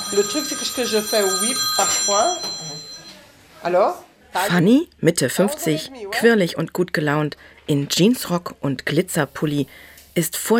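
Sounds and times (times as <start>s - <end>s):
telephone ringing: 0.0s - 3.3s
speech: 0.1s - 2.7s, 3.6s - 10.5s.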